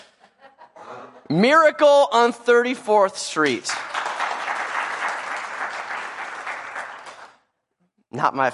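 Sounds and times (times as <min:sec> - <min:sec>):
laughter: 0:00.0 - 0:01.4
speech: 0:01.3 - 0:03.8, 0:08.2 - 0:08.5
audience applause: 0:03.4 - 0:07.4.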